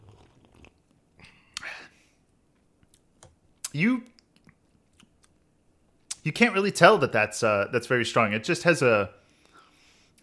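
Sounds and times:
person sipping beer: 0.0 - 1.8
speech: 3.8 - 4.1, 6.3 - 9.2.

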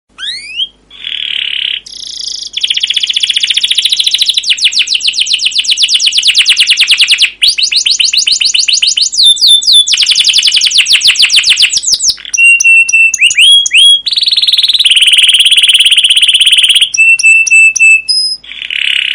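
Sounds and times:
canary song with buzzy note and long rapid rattling trill: 0.1 - 19.1.

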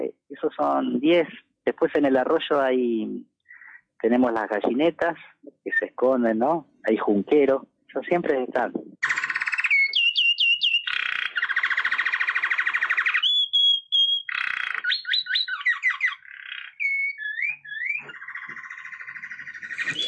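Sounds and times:
speech: 0.1 - 3.3, 4.0 - 8.9
saffron finch singing: 9.0 - 20.0.

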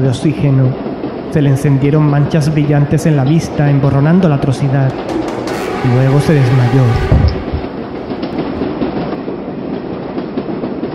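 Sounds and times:
speech: 0.0 - 7.3
subway train running along the tracks into a station: 0.0 - 10.9
faint rhythmic clacking of subway train: 2.8 - 8.7.

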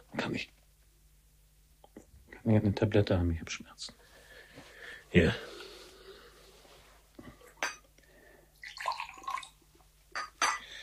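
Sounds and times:
speech: 0.2 - 0.6, 2.4 - 4.0, 5.1 - 5.6
water being poured: 8.6 - 9.6
faint clinking: 10.1 - 10.8.

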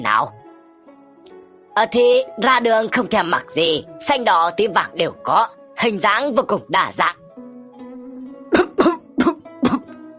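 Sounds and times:
speech: 0.0 - 0.4, 1.8 - 7.2
old man coughing violently: 8.5 - 10.0.

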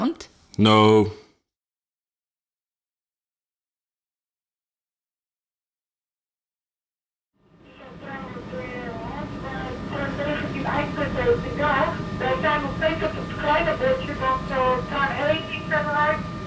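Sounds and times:
speech: 0.0 - 1.2
moving smoking train carriage interior rumble: 7.6 - 16.4
voices chattering: 7.7 - 16.4.

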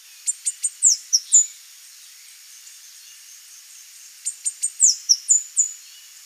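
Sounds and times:
Saffron-billed sparrow singing high ticks and thin down-slurred whistles: 0.1 - 1.6, 2.7 - 6.1.

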